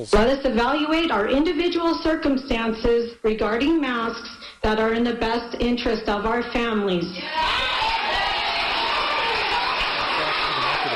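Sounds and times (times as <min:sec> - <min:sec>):
speech: 0:00.0 - 0:07.8
crowd of adults shouting angrily at a school board meeting: 0:07.2 - 0:10.9.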